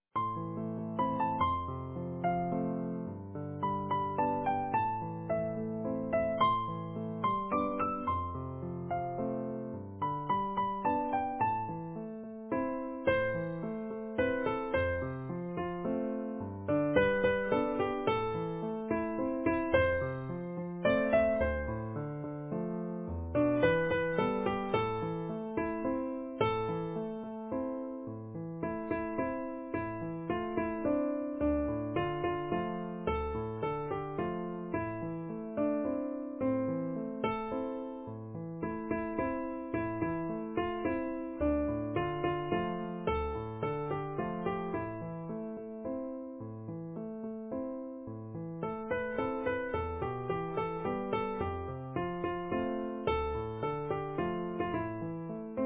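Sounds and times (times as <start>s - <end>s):
easy piano music: 0.0s - 55.6s.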